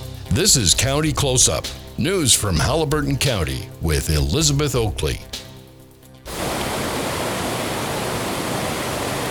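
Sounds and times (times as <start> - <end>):
speech: 0.3 - 5.4
whitewater on a river kayaking and canoeing run rushing: 6.3 - 9.2.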